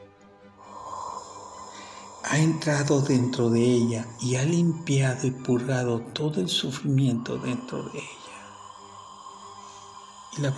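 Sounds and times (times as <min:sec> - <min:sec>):
slow deep inhalation during a guided relaxation exercise: 0:00.5 - 0:04.3, 0:07.1 - 0:10.5
speech: 0:02.3 - 0:08.2, 0:10.4 - 0:10.5.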